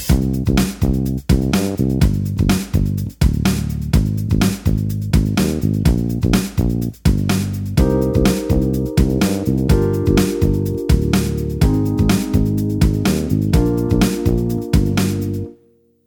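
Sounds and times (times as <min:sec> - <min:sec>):
bass playing a sixteenth-note beat: 0:00.1 - 0:15.5.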